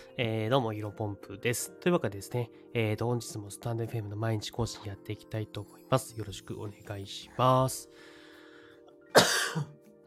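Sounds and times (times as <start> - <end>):
speech: 0.2 - 8.1, 9.5 - 9.8
harsh throaty cough: 9.1 - 9.8
throat-clearing rumble: 9.1 - 9.8.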